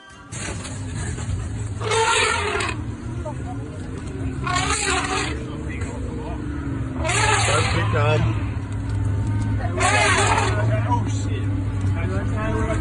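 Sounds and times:
safari jeep engine rumbling while reversing at high speed: 0.0s - 12.7s
elephant trumpeting while chasing a safari jeep: 1.7s - 3.3s, 4.1s - 5.6s, 7.0s - 8.5s, 9.7s - 10.9s
faint voices of tourists: 1.7s - 12.7s.

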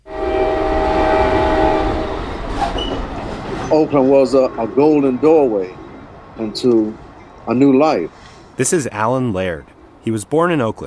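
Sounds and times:
train horn blaring in one long steady chord: 0.0s - 4.4s
heavy rumble of passing train: 0.0s - 10.8s
speech: 3.7s - 5.8s, 6.4s - 10.8s.

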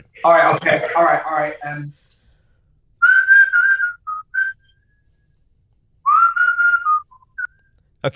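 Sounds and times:
speech: 0.2s - 2.0s
person whistling the chorus of a pop song: 3.0s - 4.9s, 6.0s - 7.7s.

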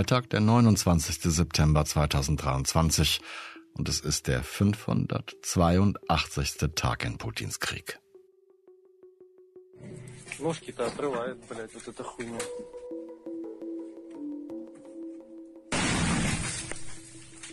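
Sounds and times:
speech: 0.0s - 8.0s, 9.8s - 12.9s
Russian PFM-1 anti-personnel butterfly landmine exploding three metres away: 15.7s - 17.0s.

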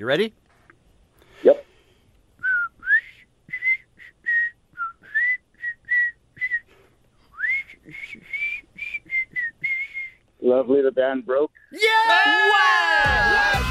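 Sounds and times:
speech: 0.0s - 0.4s, 10.5s - 13.6s
faint breathy sound: 1.1s - 2.2s, 6.6s - 8.4s
person whistling a tune: 2.4s - 6.7s, 7.3s - 10.2s.

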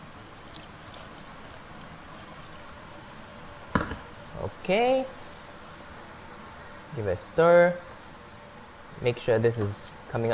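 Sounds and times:
water being poured into a cooking pot: 0.5s - 2.8s
speech: 4.7s - 5.2s, 6.9s - 7.9s, 9.0s - 10.3s.

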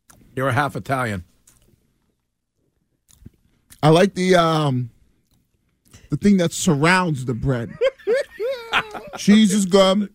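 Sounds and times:
speech: 0.4s - 1.3s, 3.8s - 4.9s, 6.1s - 7.9s, 8.8s - 10.1s
chewing gum: 1.4s - 3.8s, 5.2s - 6.0s
laughter: 7.7s - 9.7s.

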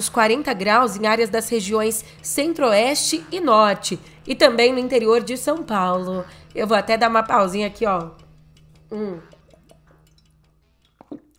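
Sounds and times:
speech: 0.0s - 8.2s, 8.9s - 9.3s
person sipping water: 8.8s - 11.3s
person gulping water: 8.9s - 10.3s, 10.9s - 11.3s.

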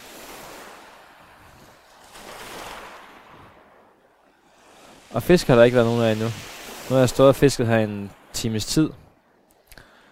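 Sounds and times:
waves breaking on the shore in harsh winter weather: 0.0s - 10.0s
speech: 5.1s - 9.0s.

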